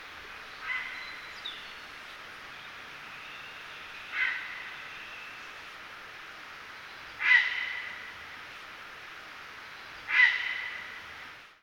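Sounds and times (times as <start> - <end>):
grey heron: 0.6 - 1.3, 4.0 - 4.9, 7.2 - 8.2, 10.0 - 11.0.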